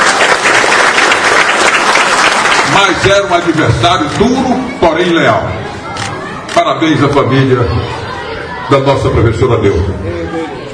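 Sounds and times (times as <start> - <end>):
audience applause during a tribute to a former athlete: 0.0 - 3.5
speech: 2.8 - 5.8, 6.6 - 8.0, 8.7 - 10.2.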